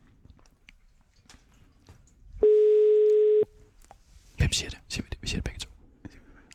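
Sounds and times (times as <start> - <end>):
telephone ringing tone on outgoing call to a 24-hour kiosk: 2.4 - 3.5.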